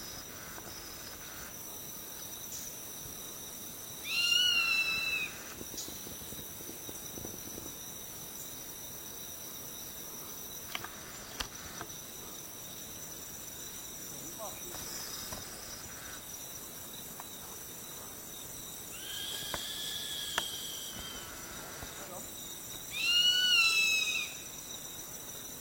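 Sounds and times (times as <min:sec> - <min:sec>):
barred-tail hawk calling: 0:04.0 - 0:05.5, 0:18.9 - 0:21.5, 0:22.9 - 0:24.5.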